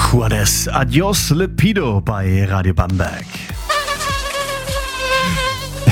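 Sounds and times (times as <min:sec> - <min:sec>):
speech: 0:00.1 - 0:03.4
mosquito buzzing: 0:03.4 - 0:05.9.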